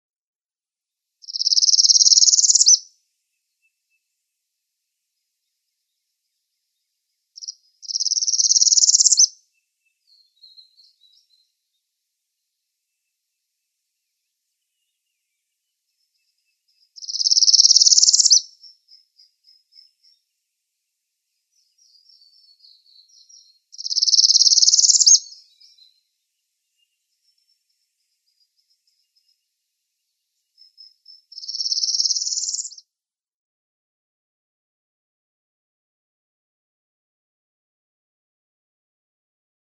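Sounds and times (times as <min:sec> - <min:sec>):
Northern Parula song: 0:01.2 - 0:04.2, 0:05.4 - 0:20.4, 0:21.3 - 0:32.8.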